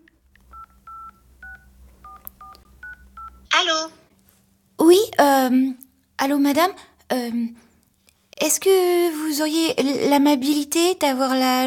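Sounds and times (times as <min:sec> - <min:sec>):
telephone keypad dialing tones: 0:00.5 - 0:03.6
speech: 0:04.9 - 0:07.6, 0:08.4 - 0:11.6.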